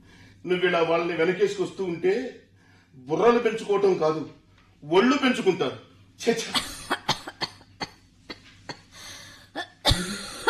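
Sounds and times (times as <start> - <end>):
speech: 0.4 - 2.4, 3.0 - 6.7
woman coughing: 6.4 - 8.9, 9.5 - 10.4.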